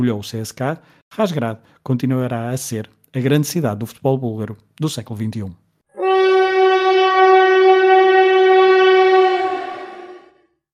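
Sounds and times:
speech: 0:00.0 - 0:05.6
train horn blast on a railway: 0:05.9 - 0:10.5.

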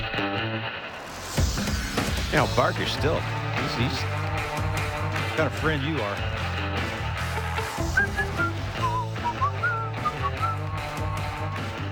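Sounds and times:
steady instrumental backing with a firm bass line: 0:01.4 - 0:11.9
speech: 0:02.3 - 0:04.2, 0:05.4 - 0:06.4
bright whistled theme tune: 0:07.6 - 0:11.9.

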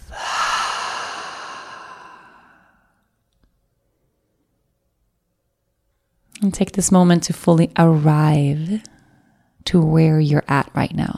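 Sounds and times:
deep breath in through the nose and out through the mouth: 0:00.0 - 0:03.1
speech: 0:06.4 - 0:09.0, 0:09.6 - 0:11.1.

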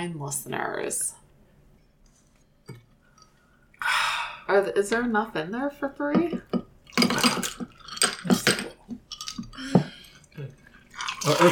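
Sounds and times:
speech: 0:00.0 - 0:01.2, 0:04.5 - 0:06.6, 0:11.3 - 0:11.4
small hard objects clinking together: 0:06.5 - 0:10.2.

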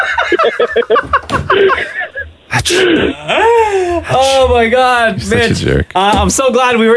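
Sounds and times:
giggly breathy vocal sounds: 0:00.0 - 0:04.2
speech: 0:00.3 - 0:06.9
person sneezing: 0:02.5 - 0:03.4.

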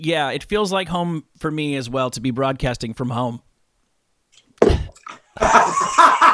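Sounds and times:
speech: 0:00.0 - 0:03.5, 0:05.4 - 0:06.1
person spitting out a mouthful of water: 0:04.6 - 0:05.6
spluttering laugh-like noise: 0:05.4 - 0:06.3.

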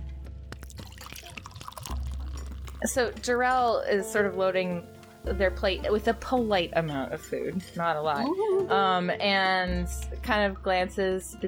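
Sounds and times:
beer pouring into a glass: 0:00.6 - 0:08.7
speech: 0:02.8 - 0:11.4.

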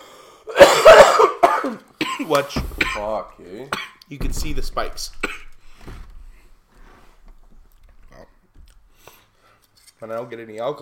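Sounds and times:
person coughing after taking a cannabis dab: 0:00.5 - 0:03.2, 0:05.2 - 0:05.6
speech: 0:01.7 - 0:06.0, 0:10.0 - 0:10.8.

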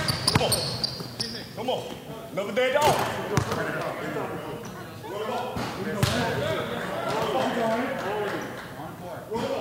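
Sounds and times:
basketballs bouncing on a hard gym court: 0:00.0 - 0:01.1, 0:02.8 - 0:03.7, 0:06.0 - 0:06.4
speech: 0:01.6 - 0:08.4.

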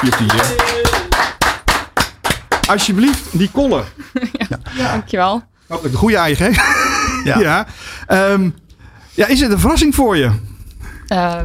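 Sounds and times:
speech: 0:00.0 - 0:01.3, 0:02.7 - 0:08.6, 0:09.2 - 0:10.5, 0:11.1 - 0:11.4
hands clapping: 0:00.0 - 0:03.4
laughter: 0:03.7 - 0:04.9, 0:06.4 - 0:07.7.

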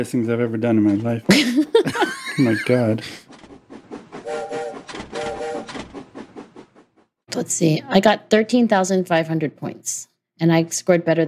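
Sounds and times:
speech: 0:00.0 - 0:03.3, 0:07.4 - 0:11.2
laughter: 0:01.3 - 0:03.2
passing train rumbling: 0:02.0 - 0:07.2
train whistle blasts: 0:04.3 - 0:05.7.

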